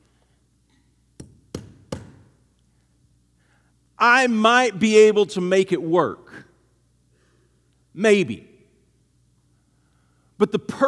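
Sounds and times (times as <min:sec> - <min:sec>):
hammer striking a screw into wood: 0:01.2 - 0:02.3
speech: 0:04.0 - 0:06.2, 0:08.0 - 0:08.5, 0:10.4 - 0:10.8.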